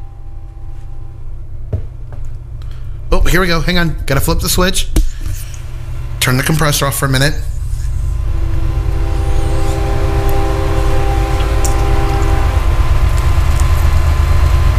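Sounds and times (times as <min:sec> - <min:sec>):
sustained tonal hums: 0:00.0 - 0:02.9, 0:05.1 - 0:14.7
speech: 0:03.2 - 0:05.4, 0:06.3 - 0:07.5
train rumbling past: 0:07.4 - 0:14.7.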